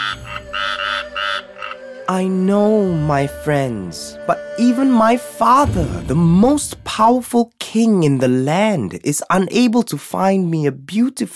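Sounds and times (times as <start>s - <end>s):
frogs and toads croaking: 0.0s - 1.9s
speech: 2.1s - 11.3s.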